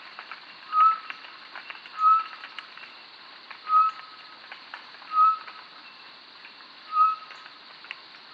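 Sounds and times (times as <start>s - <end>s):
short-tailed batis Batis mixta single pure whistled notes: 0.7s - 1.1s, 2.0s - 2.4s, 3.6s - 4.2s, 5.1s - 5.5s, 6.9s - 7.4s.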